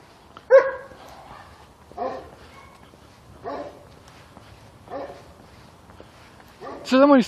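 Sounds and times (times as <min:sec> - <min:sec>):
dogs barking: 0:00.5 - 0:04.0, 0:04.8 - 0:05.4, 0:06.6 - 0:07.0
speech: 0:06.9 - 0:07.2.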